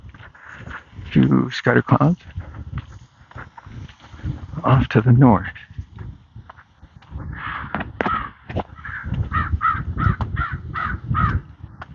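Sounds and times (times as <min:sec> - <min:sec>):
speech: 0:01.2 - 0:02.4, 0:04.6 - 0:05.6
sharp knocks or footsteps: 0:02.2 - 0:04.4, 0:05.8 - 0:10.5, 0:11.2 - 0:11.9
crows cawing: 0:07.1 - 0:11.6.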